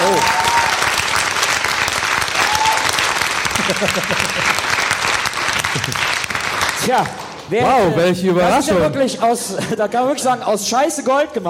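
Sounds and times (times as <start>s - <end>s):
audience applause: 0.0s - 8.0s
laughter: 3.4s - 4.8s, 5.6s - 6.2s, 9.4s - 10.0s
speech: 3.8s - 4.5s, 6.9s - 11.4s.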